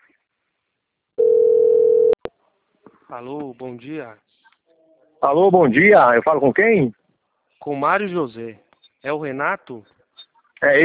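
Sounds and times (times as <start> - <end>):
telephone dial tone while placing a call: 1.2 - 2.2
speech: 3.1 - 4.4, 5.2 - 7.0, 7.6 - 9.9, 10.6 - 10.8.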